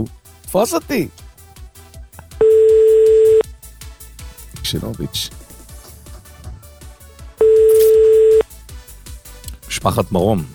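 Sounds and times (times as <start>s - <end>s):
speech: 0.0s - 1.2s, 4.7s - 5.4s, 9.8s - 10.5s
soft rhythmic beat: 0.0s - 10.5s
steady telephone line tone: 2.4s - 3.4s, 7.4s - 8.4s.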